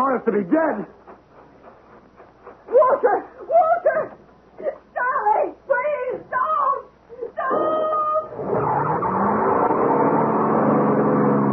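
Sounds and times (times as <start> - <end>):
speech: 0.2 - 1.0, 2.7 - 6.8
loud car engine roaring: 8.3 - 11.5.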